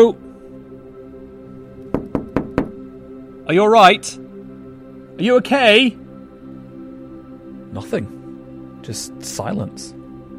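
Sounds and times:
speech: 0.0s - 0.2s, 3.5s - 4.2s, 5.2s - 6.0s, 7.7s - 8.2s, 8.8s - 10.0s
sharp knocks on a shop glass window: 1.9s - 2.8s.

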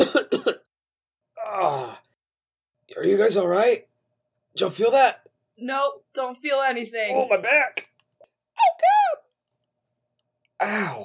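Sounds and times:
harsh coughs: 0.0s - 0.7s
drawn-out strained vocal groan: 1.4s - 2.1s
speech: 3.0s - 3.9s, 4.5s - 7.9s, 10.6s - 11.0s.

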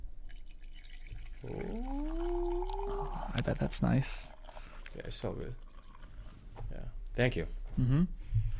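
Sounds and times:
coffee pouring into a cup: 0.1s - 6.9s
speech: 1.4s - 2.0s, 3.3s - 4.3s, 4.9s - 5.6s, 6.7s - 8.5s.

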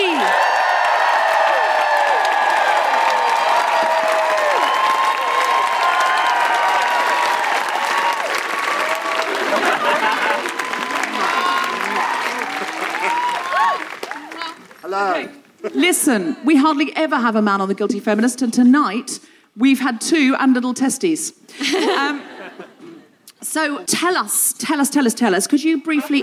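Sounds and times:
live crowd cheering with whoops and shouts: 0.0s - 14.6s
live crowd audience clapping: 0.0s - 15.0s
laughter: 8.8s - 14.4s, 21.5s - 23.1s, 25.9s - 26.2s
speech: 16.1s - 22.7s, 23.4s - 26.2s.

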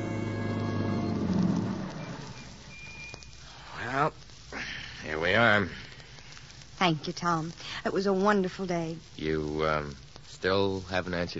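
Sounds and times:
car engine humming as it drives up to a boarding house: 0.0s - 3.2s
soft hiss: 0.0s - 11.3s
speech: 6.9s - 11.3s.

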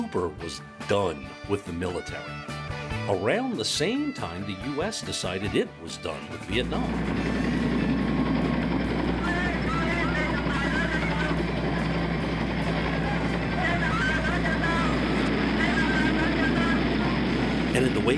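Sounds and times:
speech: 0.2s - 7.6s
helicopter roar with low pulsing engine drone during evacuation: 6.5s - 18.1s.

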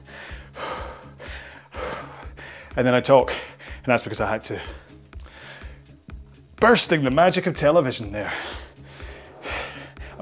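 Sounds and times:
breathing close to the microphone: 0.0s - 3.8s, 4.6s - 6.0s, 8.2s - 10.1s
speech: 2.8s - 4.9s, 6.6s - 8.6s.

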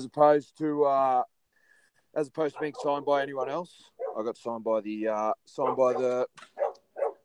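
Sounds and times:
speech: 0.0s - 1.4s, 2.1s - 6.6s
dog barking: 2.6s - 3.0s, 4.0s - 4.2s, 5.6s - 7.2s.

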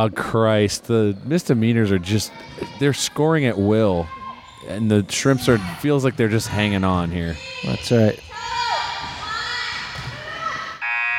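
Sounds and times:
speech: 0.0s - 8.3s
basketball arena crowd noise: 0.0s - 11.1s
squeaks at basketball game: 4.2s - 5.5s
halftime buzzer at basketball game: 10.8s - 11.1s.

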